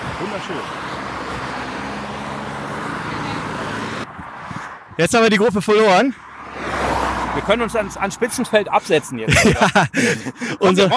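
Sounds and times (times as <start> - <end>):
speech: 0.2 - 1.4, 5.0 - 6.2, 7.4 - 10.9
car driving past with road noise and engine hum: 0.3 - 4.8, 6.2 - 7.8
laughter: 9.2 - 10.9.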